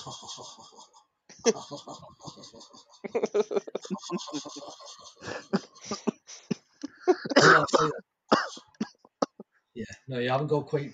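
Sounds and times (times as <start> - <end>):
speech: 0.0 - 6.5, 7.1 - 8.6, 9.8 - 10.9
voice imitating a man's laugh with cough-like bursts: 0.0 - 8.0.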